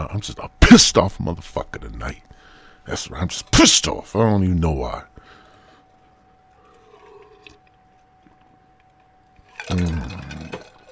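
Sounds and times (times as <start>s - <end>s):
speech: 0.2s - 5.2s, 9.7s - 10.2s
water pouring into a glass: 9.4s - 10.9s.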